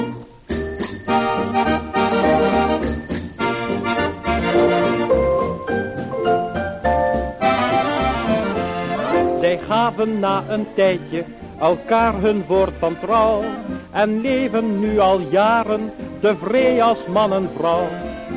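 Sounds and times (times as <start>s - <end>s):
lively full band music: 0.0s - 18.3s
bicycle bell ringing: 0.5s - 1.6s, 2.8s - 3.8s
speech: 9.9s - 18.1s.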